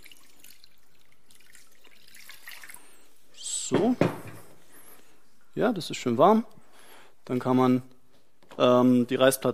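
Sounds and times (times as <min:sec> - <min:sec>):
cold and warm water splashing and trickling in a bowl: 0:00.0 - 0:03.1
speech: 0:03.7 - 0:04.1, 0:05.6 - 0:06.6, 0:07.3 - 0:07.9, 0:08.6 - 0:09.5.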